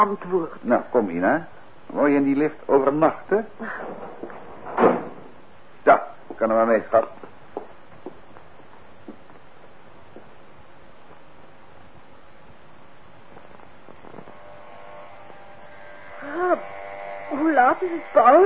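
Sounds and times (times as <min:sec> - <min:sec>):
speech: 0:00.0 - 0:05.0, 0:05.8 - 0:07.2, 0:16.4 - 0:18.4
electric shaver buzzing: 0:13.9 - 0:18.4.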